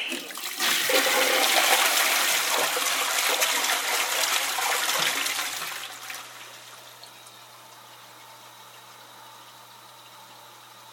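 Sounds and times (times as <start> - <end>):
toilet flushing: 0.1 - 10.8.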